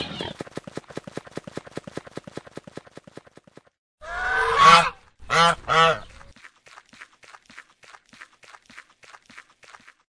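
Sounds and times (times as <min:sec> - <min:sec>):
rhythmic clopping of hooves: 0:00.0 - 0:03.7, 0:05.4 - 0:10.0
goose honking: 0:04.0 - 0:06.1.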